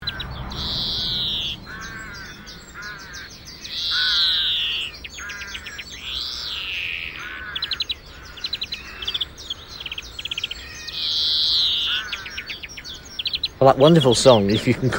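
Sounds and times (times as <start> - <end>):
greenfinch birdsong: 0.0 - 14.9.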